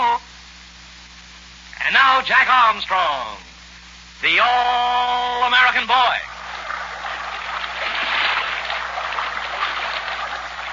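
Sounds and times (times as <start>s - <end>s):
speech: 2.2s - 3.5s, 4.2s - 6.3s
faint splashes: 6.3s - 10.7s
rushing river water in swift rapids: 6.3s - 10.7s.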